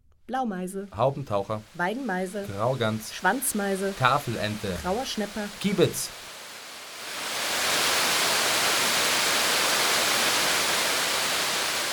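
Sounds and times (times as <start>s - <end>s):
speech: 0.3s - 6.2s
water rushing over a weir: 2.6s - 11.9s.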